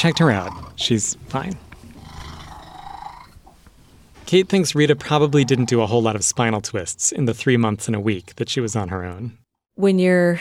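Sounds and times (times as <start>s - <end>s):
speech: 0.0s - 1.7s, 4.3s - 10.4s
female cat purring loudly: 0.0s - 3.5s.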